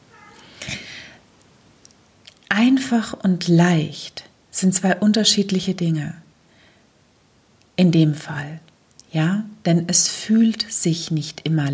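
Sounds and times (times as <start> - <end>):
domestic cat meowing: 0.0 - 0.6
speech: 2.6 - 6.2, 7.8 - 11.7.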